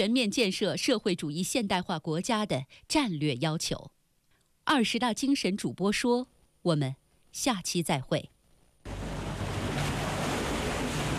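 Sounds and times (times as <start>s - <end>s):
speech: 0.0s - 4.0s, 4.7s - 9.0s
ocean waves breaking on shore: 8.9s - 11.1s.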